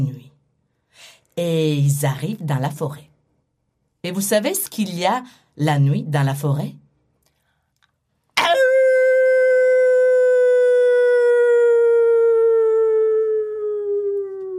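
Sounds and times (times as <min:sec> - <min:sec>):
speech: 0:01.0 - 0:03.1, 0:04.0 - 0:06.8
wolf howling in a forest at night: 0:08.8 - 0:14.5.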